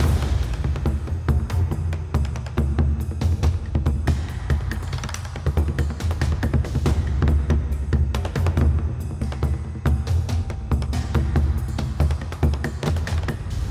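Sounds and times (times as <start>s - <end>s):
free spin background music: 0.0s - 13.6s.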